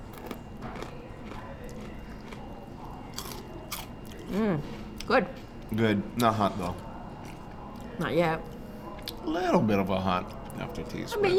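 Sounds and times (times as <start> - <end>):
snack chips coated with MSG being crunched and chewed: 3.2 - 3.9
speech: 4.3 - 6.9, 8.0 - 8.5, 9.2 - 11.3.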